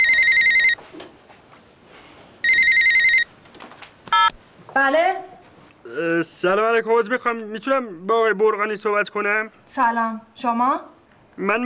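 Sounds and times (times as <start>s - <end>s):
telephone ringing with electronic trilling tones: 0.0s - 0.8s, 2.4s - 3.3s, 4.1s - 4.3s
speech: 4.8s - 5.2s, 6.4s - 11.6s.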